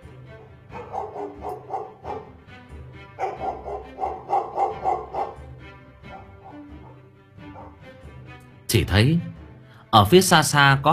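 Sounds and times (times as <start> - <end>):
dog barking: 0.4 - 2.4, 3.1 - 7.8
speech: 8.8 - 9.3, 9.9 - 10.9.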